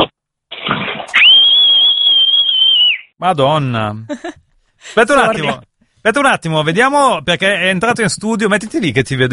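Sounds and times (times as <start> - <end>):
loud piercing human whistle: 1.2 - 3.1
speech: 3.2 - 4.4, 5.0 - 9.3.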